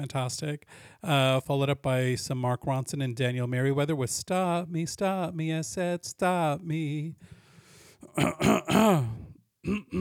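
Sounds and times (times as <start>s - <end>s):
speech: 0.0s - 7.4s, 8.1s - 10.0s
person clearing throat: 8.0s - 10.0s.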